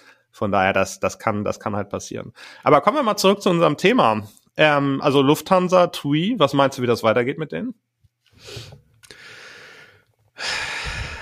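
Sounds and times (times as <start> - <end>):
speech: 0.4 - 8.8, 10.4 - 10.7
long deep breath in and heavy exhale: 2.4 - 2.6, 8.3 - 11.2.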